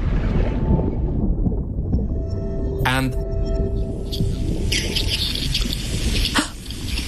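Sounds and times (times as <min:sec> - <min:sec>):
thousands of herring swimming beneath a boat at a fishing trap recorded by hydrophone: 0:00.0 - 0:07.0
speech: 0:02.9 - 0:03.2
faint underwater ticks and crackles recorded by hydrophone: 0:03.6 - 0:07.0.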